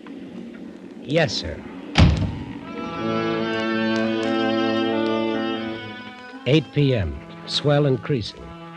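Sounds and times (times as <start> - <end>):
steady droning tonal hum: 0.0 - 8.7
speech: 1.1 - 1.7, 6.5 - 8.5
heavy chart room door on a ship banging shut: 2.0 - 2.5.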